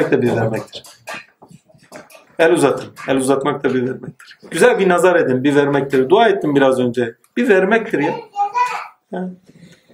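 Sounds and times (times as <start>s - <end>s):
speech: 0.0s - 1.0s, 2.4s - 8.3s, 9.1s - 9.6s
baby babbling: 8.1s - 9.0s.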